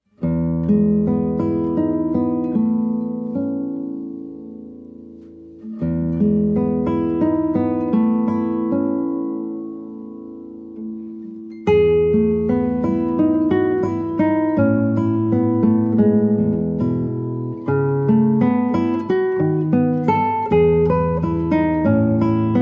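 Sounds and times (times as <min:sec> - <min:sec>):
solo guitar: 0:00.0 - 0:22.6.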